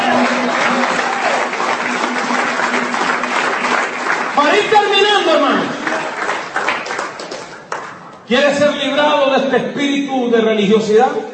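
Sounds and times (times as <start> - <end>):
church congregation applauding: 0.0 - 8.3
speech: 8.3 - 11.3.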